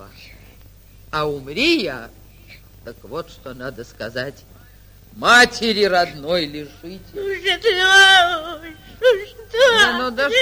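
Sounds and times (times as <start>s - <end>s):
speech: 1.1s - 2.2s, 2.8s - 4.5s, 5.2s - 10.4s
woman crying: 7.1s - 10.4s.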